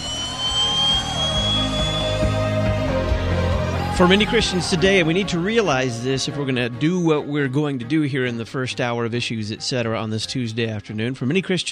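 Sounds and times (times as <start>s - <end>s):
jet engine roaring: 0.0s - 5.4s
speech: 4.0s - 11.7s.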